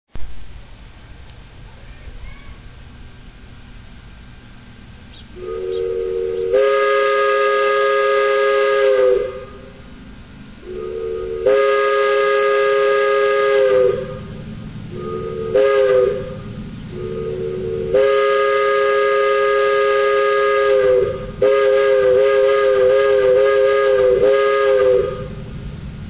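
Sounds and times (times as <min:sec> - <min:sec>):
Hancock 4700 horn: 0:05.4 - 0:09.5, 0:10.7 - 0:14.2, 0:17.0 - 0:25.3.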